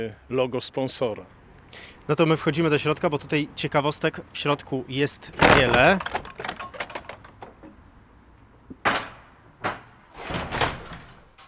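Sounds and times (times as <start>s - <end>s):
speech: 0.0s - 6.5s
heavy wooden church door creaking and rattling: 5.3s - 7.8s, 8.7s - 11.4s
heavy wooden church door slamming shut with an echoing thud: 5.4s - 7.2s, 8.8s - 11.4s.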